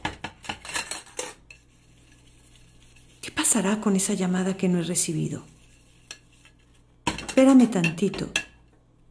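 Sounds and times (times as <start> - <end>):
dishes clinking as a plate is washed with a soapy sponge: 0.0 - 1.7, 7.1 - 8.7
washing a plate with a soapy sponge: 1.5 - 7.9
speech: 3.2 - 5.6, 7.4 - 8.4.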